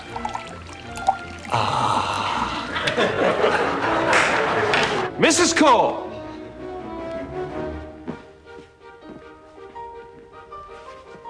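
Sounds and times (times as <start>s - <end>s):
water pouring from a water glass: 0.0s - 2.8s
speech: 1.5s - 1.8s, 5.2s - 6.0s
laughter: 2.2s - 5.1s.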